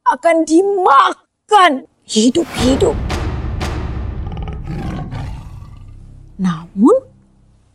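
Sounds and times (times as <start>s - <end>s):
speech: 0.1s - 3.0s, 6.4s - 7.1s
tiger roar: 4.3s - 6.8s.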